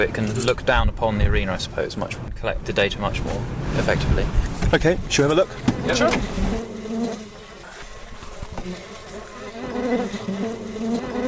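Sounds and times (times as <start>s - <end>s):
speech: 0.0s - 6.7s
many bees buzzing around a hive: 5.0s - 11.2s.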